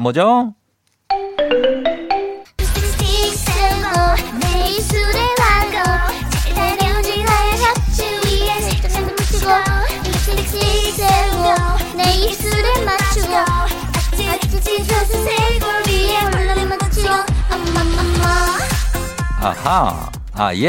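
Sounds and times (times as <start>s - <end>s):
speech: 0.0s - 1.9s, 19.4s - 20.6s
loud full pop backing track with a driving beat: 1.1s - 20.4s
young child singing a bouncy pop song: 2.8s - 19.6s.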